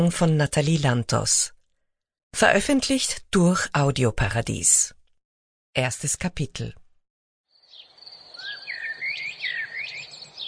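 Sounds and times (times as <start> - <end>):
speech: 0.0 - 1.6, 2.3 - 5.0, 5.8 - 6.8
birds chirping and warbling with whistled trills and tweets: 7.5 - 10.4
soft outdoor hiss: 7.5 - 10.4.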